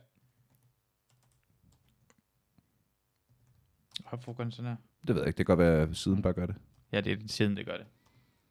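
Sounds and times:
typing on a computer keyboard: 0.4 - 2.2
speech: 4.1 - 8.0.

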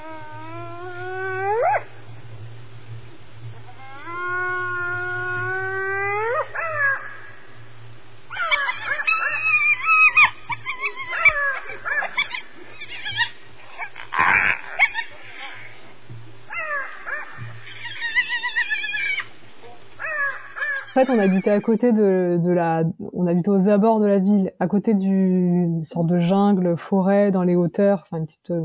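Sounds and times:
hyenas giving long rising whoops at night: 0.0 - 2.0, 3.6 - 7.6, 8.3 - 21.7
yelps, cackles and barks from hyenas and stray dogs: 1.4 - 1.9, 4.2 - 7.3, 8.3 - 15.9, 16.5 - 21.6
speech: 21.0 - 28.6.

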